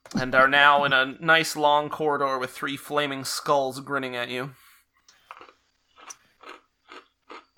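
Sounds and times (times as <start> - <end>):
speech: 0.2 - 4.6
person chewing crunchy popcorn: 5.2 - 7.5.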